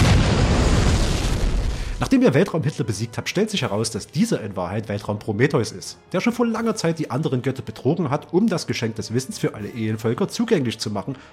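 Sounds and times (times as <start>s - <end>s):
dense barrage of loud explosions: 0.0s - 2.2s
speech: 2.0s - 11.3s.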